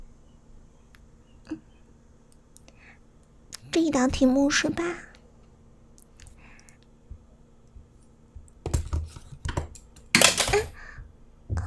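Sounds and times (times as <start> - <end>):
faint hum: 0.0 - 11.6
speech: 3.8 - 5.1
pen clattering onto a floor: 8.7 - 10.8.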